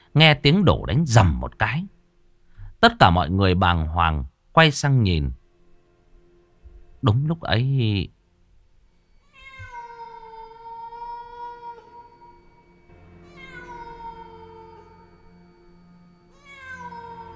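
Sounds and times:
speech: 0.2s - 2.0s, 2.8s - 5.4s, 7.0s - 8.2s
big black cat meowing: 9.2s - 15.3s, 16.3s - 17.3s.

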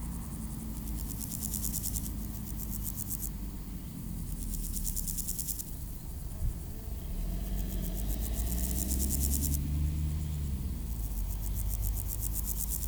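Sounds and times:
passing car engines humming low at Aveize France: 0.0s - 12.8s
grasshopper making rapid pulsed buzzes at Aveize France: 0.7s - 3.3s, 4.1s - 5.8s, 7.0s - 10.1s, 10.9s - 12.8s.

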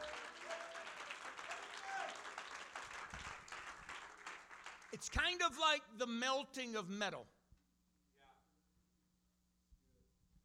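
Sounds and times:
congregation clapping hands at a church service: 0.0s - 5.7s
speech: 4.9s - 7.4s.

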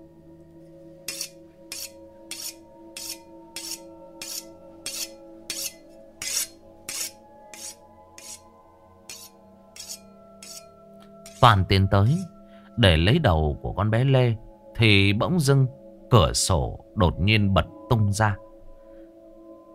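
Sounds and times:
cleaver knife sharpened against the edge of a plate: 1.1s - 8.4s, 9.1s - 11.4s
speech: 11.4s - 18.5s.

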